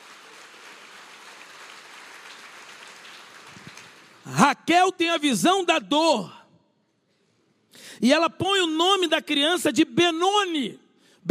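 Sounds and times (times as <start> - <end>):
audience applauding: 0.0 - 4.3
speech: 4.3 - 6.4, 8.0 - 11.2.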